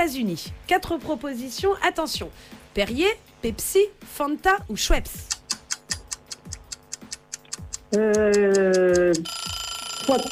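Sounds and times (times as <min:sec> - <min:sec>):
speech: 0:00.0 - 0:05.4, 0:07.9 - 0:09.4, 0:10.1 - 0:10.3
quiz countdown timer ticking: 0:05.2 - 0:10.3
loud sustained buzzer-like tone: 0:09.1 - 0:10.3.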